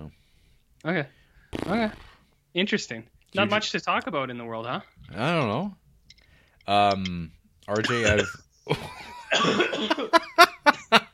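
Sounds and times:
speech: 0:00.8 - 0:05.8, 0:06.7 - 0:11.1
person coughing from choking on a drink: 0:07.8 - 0:08.4, 0:09.2 - 0:10.1
laughter: 0:07.8 - 0:11.1.

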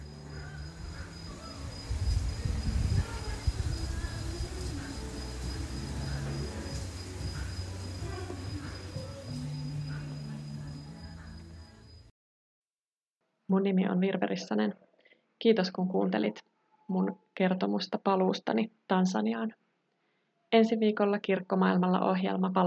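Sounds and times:
crickets chirping: 0:00.0 - 0:12.1
speech: 0:13.5 - 0:14.8, 0:15.4 - 0:19.6, 0:20.5 - 0:22.6.

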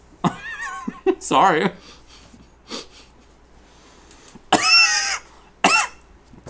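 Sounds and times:
speech: 0:01.2 - 0:02.0
loud harsh coughs: 0:04.5 - 0:06.0.

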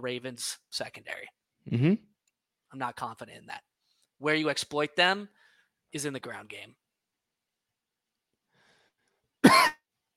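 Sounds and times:
speech: 0:00.0 - 0:02.1, 0:02.7 - 0:06.8
short cough: 0:09.4 - 0:09.8.

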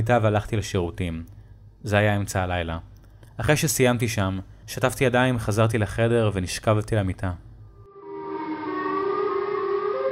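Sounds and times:
speech: 0:00.0 - 0:07.5
civil defense air-raid siren droning with a broken-sounding tone: 0:07.9 - 0:10.1.

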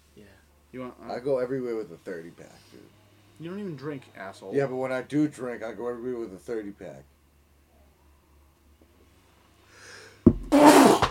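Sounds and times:
speech: 0:00.7 - 0:07.1
person sneezing loudly: 0:10.5 - 0:11.0.

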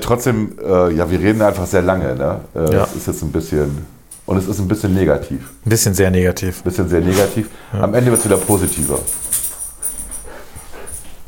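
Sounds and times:
speech: 0:00.1 - 0:09.3
dog panting: 0:08.1 - 0:11.2.

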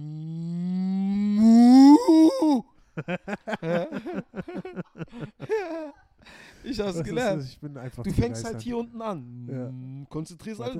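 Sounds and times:
person imitating a cow mooing: 0:00.0 - 0:02.6
laughter: 0:03.0 - 0:06.2
speech: 0:06.8 - 0:10.7.

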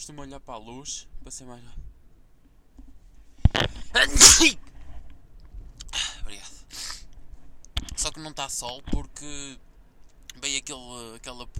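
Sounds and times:
speech: 0:00.0 - 0:01.9, 0:03.9 - 0:04.7, 0:08.1 - 0:09.7, 0:10.4 - 0:11.5
faint rustle: 0:00.0 - 0:04.0, 0:04.6 - 0:10.8
loud sneeze: 0:03.9 - 0:04.6, 0:06.7 - 0:07.1
sharp intake of breath: 0:05.9 - 0:07.1.

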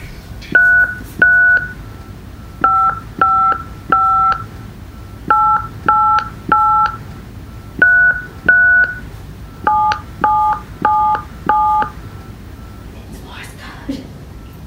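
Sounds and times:
telephone keypad touch-tones: 0:00.6 - 0:01.8, 0:02.6 - 0:04.5, 0:05.3 - 0:07.0, 0:07.8 - 0:09.0, 0:09.6 - 0:12.0.

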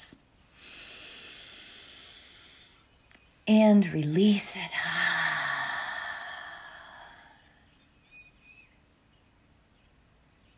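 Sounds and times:
long deep inhale during a guided breathing exercise: 0:00.6 - 0:02.8, 0:04.6 - 0:07.5
speech: 0:03.5 - 0:05.0.

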